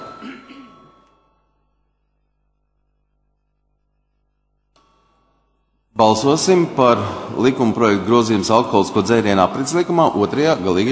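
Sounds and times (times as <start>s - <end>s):
bell rung to call a vote: 0.0s - 2.0s
speech: 6.0s - 10.9s.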